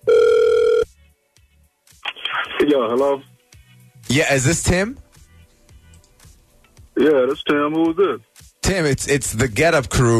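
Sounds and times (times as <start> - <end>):
telephone ringback tone on an outgoing call: 0.0 - 0.9
speech: 2.6 - 3.3, 4.1 - 5.0, 7.0 - 10.1.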